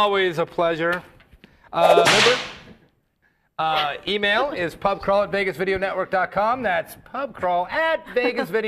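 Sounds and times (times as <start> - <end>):
speech: 0.2 - 1.1, 1.7 - 2.5, 3.6 - 8.6
whip crack sound effect: 2.0 - 2.7.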